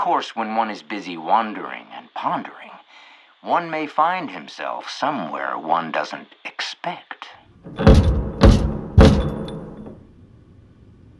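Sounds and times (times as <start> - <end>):
speech: 0.0 - 2.7, 3.4 - 8.2
loud heavy knocking on a front door: 7.7 - 10.0.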